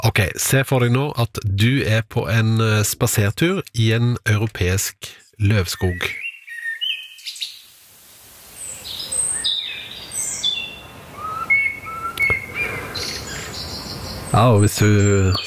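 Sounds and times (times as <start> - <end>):
speech: 0.0 - 6.2, 14.4 - 15.4
soft outdoor hum: 0.0 - 15.4
several birds chirping and whistling in a European deciduous forest: 5.6 - 7.7, 8.6 - 15.4.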